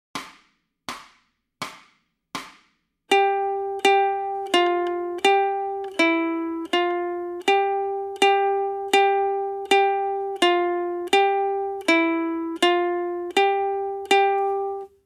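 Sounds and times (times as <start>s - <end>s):
ukulele warm-up in G: 3.1s - 15.0s.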